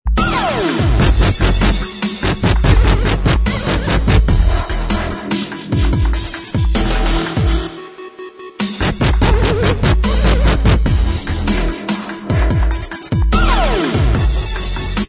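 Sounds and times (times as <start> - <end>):
dubstep remix instrumental track: 0.1 - 15.0.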